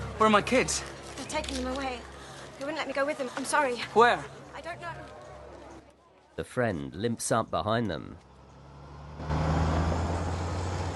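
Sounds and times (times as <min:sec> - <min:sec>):
speech: 0:00.2 - 0:05.1, 0:06.4 - 0:08.3
truck with a canvas roof driving along a country road: 0:08.2 - 0:10.9.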